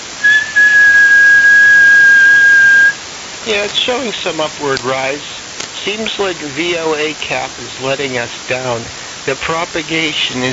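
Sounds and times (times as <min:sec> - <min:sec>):
faint hiss: 0:00.0 - 0:10.5
person whistling one steady sustained note into a microphone: 0:00.2 - 0:03.0
speech: 0:03.4 - 0:10.5.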